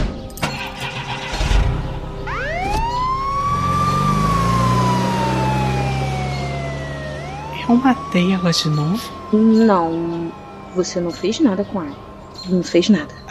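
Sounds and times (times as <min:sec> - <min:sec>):
engine rumble: 0:00.0 - 0:13.2
traffic noise: 0:00.0 - 0:13.2
ambulance siren wailing: 0:00.6 - 0:13.2
speech: 0:07.7 - 0:13.2.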